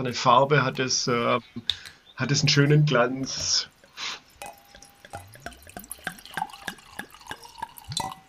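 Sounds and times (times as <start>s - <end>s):
speech: 0.0s - 4.2s
drink being poured into a glass: 4.3s - 8.2s.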